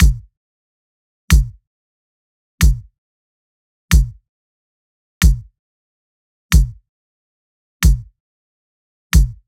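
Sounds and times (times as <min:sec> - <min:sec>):
Latin drum loop with kick at 95 BPM: 0:00.0 - 0:00.3, 0:01.3 - 0:01.6, 0:02.6 - 0:02.9, 0:03.9 - 0:04.2, 0:05.2 - 0:05.5, 0:06.5 - 0:06.8, 0:07.8 - 0:08.1, 0:09.2 - 0:09.4.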